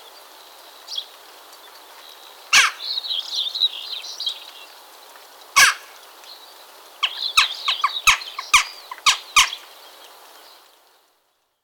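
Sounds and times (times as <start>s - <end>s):
western jackdaw sharp short calls: 2.5s - 3.0s, 5.6s - 6.0s, 7.0s - 9.7s.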